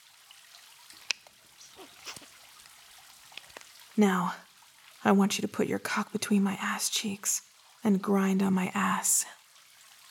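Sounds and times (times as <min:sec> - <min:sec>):
thick lube trickling from a bottle: 0:00.2 - 0:05.0
soft wet squelches: 0:00.8 - 0:04.0
speech: 0:04.0 - 0:04.4, 0:05.0 - 0:09.4.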